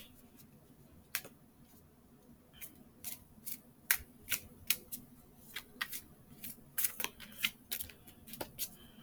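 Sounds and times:
tarot cards from a Thoth deck being flipped and laid down: 3.0s - 8.7s.

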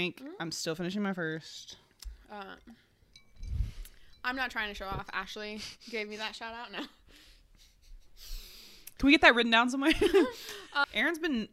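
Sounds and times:
speech: 0.0s - 2.9s, 4.2s - 7.2s, 9.0s - 11.5s
tequila shot glasses clinking in a toast: 3.0s - 4.7s.

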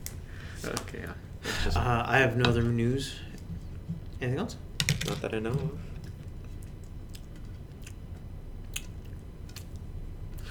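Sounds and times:
speech: 0.6s - 3.3s, 4.2s - 5.9s
person chewing gum right next to the microphone: 6.0s - 10.4s.

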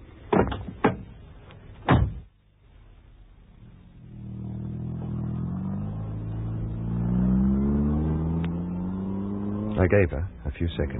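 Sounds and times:
car engine starting and revving: 3.6s - 10.2s
speech: 9.8s - 10.9s.

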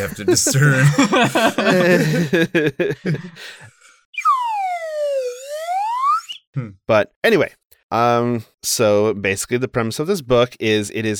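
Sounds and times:
person laughing: 0.0s - 3.6s
speech: 0.0s - 3.7s, 6.6s - 11.1s
slide whistle swooping down and up in pitch: 4.1s - 6.4s.

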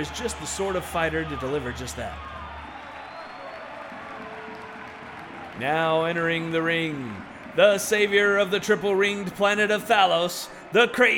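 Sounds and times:
speech: 0.0s - 2.4s, 5.6s - 11.1s
large arena crowd cheering and roaring: 0.0s - 11.1s
scattered clapping: 2.8s - 6.6s.

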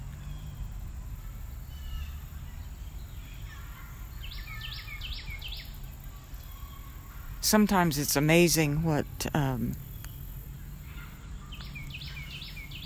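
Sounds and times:
birds chirping in a park: 0.0s - 12.8s
breeze in a park: 5.7s - 12.8s
speech: 7.4s - 9.8s.

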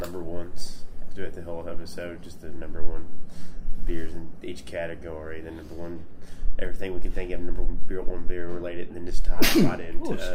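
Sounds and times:
speech: 0.1s - 10.3s
person sneezing: 9.4s - 10.3s.

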